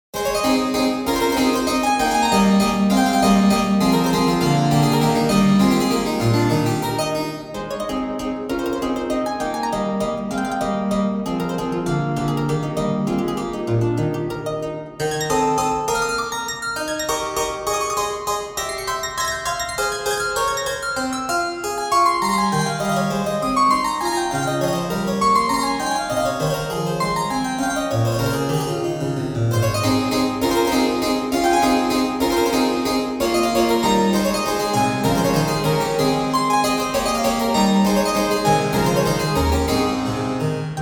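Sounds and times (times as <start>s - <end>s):
English harpsichord playing an allegro: 0.2s - 40.8s.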